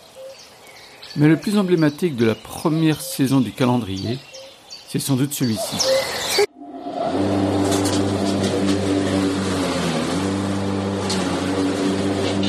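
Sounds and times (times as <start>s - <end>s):
speech: 1.2s - 4.3s, 4.9s - 6.5s
small petrol lawnmower engine droning: 6.5s - 12.4s.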